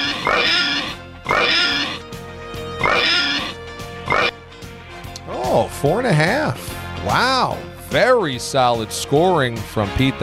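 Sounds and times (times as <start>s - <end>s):
pig oinking and squealing: 0.0s - 2.1s, 2.8s - 4.4s
speech: 5.8s - 10.2s.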